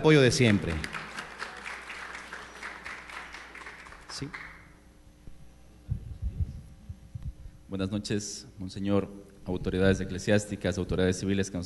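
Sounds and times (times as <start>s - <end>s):
speech: 0.0s - 1.0s, 4.2s - 4.5s, 7.7s - 11.6s
audience applause at an evening ceremony: 0.4s - 4.7s.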